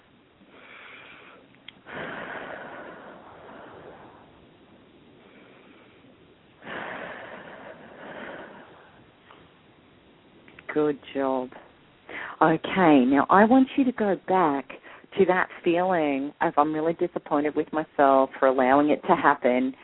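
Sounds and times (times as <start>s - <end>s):
person taking long airy deep breaths: 0.5s - 4.6s, 5.2s - 9.4s
speech: 10.8s - 11.6s, 12.4s - 19.8s.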